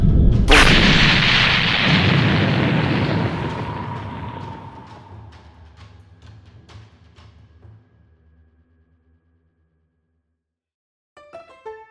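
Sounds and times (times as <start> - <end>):
loud explosion with long rumbling roar: 0.5 - 5.3.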